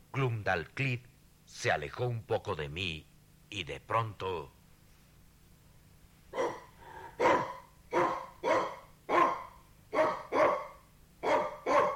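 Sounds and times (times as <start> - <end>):
speech: 0.2 - 4.6
small white dog barking: 6.3 - 11.9.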